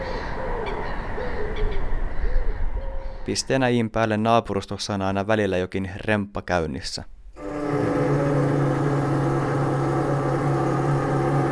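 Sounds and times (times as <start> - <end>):
pigeons cooing under the window: 0.0 - 3.2
steady broadband outdoor noise: 0.0 - 4.6, 6.0 - 11.4
speech: 3.3 - 7.2.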